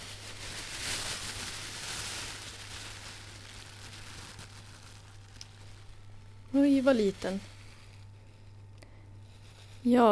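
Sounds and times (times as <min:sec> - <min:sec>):
small well-wrapped bag crinkling as it is unwrapped: 0:00.0 - 0:09.9
speech: 0:06.5 - 0:07.5, 0:09.8 - 0:10.1.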